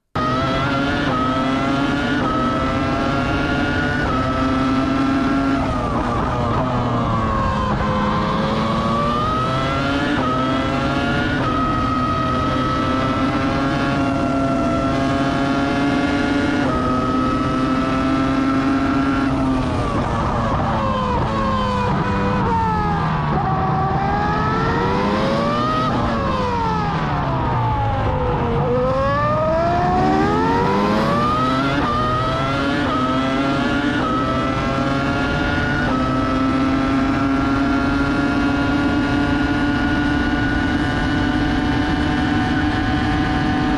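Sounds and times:
race car engine revving and shifting through gears: 0.0s - 43.7s.

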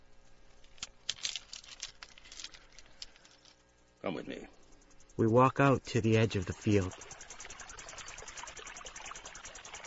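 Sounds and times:
small stones poured into cupped hands: 0.6s - 3.5s
speech: 4.0s - 4.6s, 5.2s - 7.2s.

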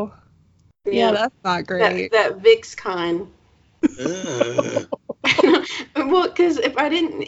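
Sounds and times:
speech: 0.0s - 0.2s, 0.8s - 7.2s
person gagging with a strained voiced retch: 3.8s - 5.2s
laughter: 3.8s - 5.8s
short sharp throat-clearing bursts: 3.9s - 5.0s.

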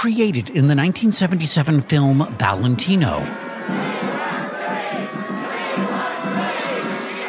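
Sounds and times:
speech: 0.0s - 4.0s
agitated crowd of mourners rioting outside a funeral parlor: 0.1s - 7.2s.

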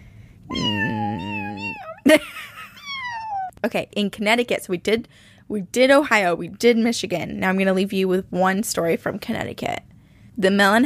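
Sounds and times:
cat meowing: 0.5s - 2.0s, 2.8s - 3.5s
speech: 2.1s - 2.4s, 3.6s - 10.8s.

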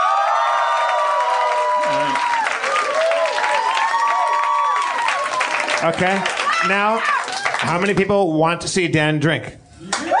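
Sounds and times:
scattered shouts and whoops from crowd: 0.0s - 7.6s, 9.9s - 10.1s
large crowd cheering and clapping: 0.0s - 8.2s, 9.8s - 10.1s
speech: 5.8s - 9.6s.

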